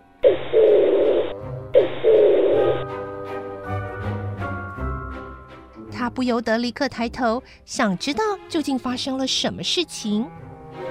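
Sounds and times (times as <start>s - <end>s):
pigeon calling overhead with harsh drawn-out cries: 0.2s - 2.8s
speech: 6.2s - 10.4s.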